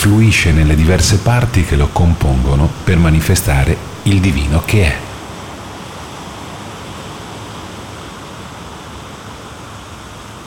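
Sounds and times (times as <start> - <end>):
speech: 0.0 - 5.1
water waves lapping on a beach: 3.5 - 10.4.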